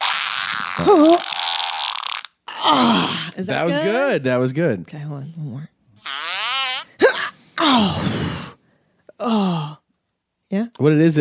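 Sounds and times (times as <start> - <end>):
person making a mouth-blown fart imitation: 0.0 - 2.8, 6.0 - 8.6
speech: 0.8 - 1.4, 2.7 - 6.2, 7.6 - 8.5, 9.2 - 9.8, 10.5 - 11.2.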